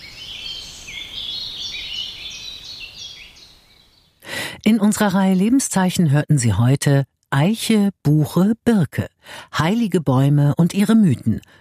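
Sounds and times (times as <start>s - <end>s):
birds chirping and warbling in oak treetops in spring: 0.0s - 4.2s
speech: 4.7s - 11.5s.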